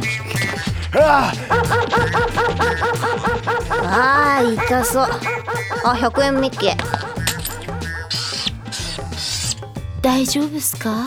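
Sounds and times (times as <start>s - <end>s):
laughter: 0.0s - 9.5s
low droning background: 0.0s - 10.1s
speech: 0.9s - 7.0s, 10.0s - 11.0s
dog yelping and barking after biting a person: 1.5s - 8.6s.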